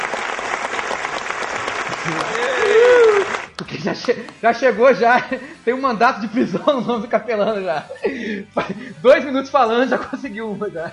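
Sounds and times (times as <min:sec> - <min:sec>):
audience applause: 0:00.0 - 0:03.5
laughter: 0:01.9 - 0:04.4, 0:06.2 - 0:09.1
speech: 0:02.0 - 0:02.8, 0:03.8 - 0:10.9.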